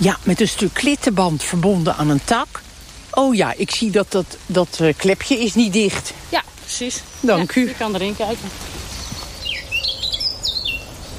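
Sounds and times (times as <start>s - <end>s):
speech: 0.0s - 2.6s, 3.2s - 8.7s
Eurasian blackcap singing: 6.7s - 11.1s.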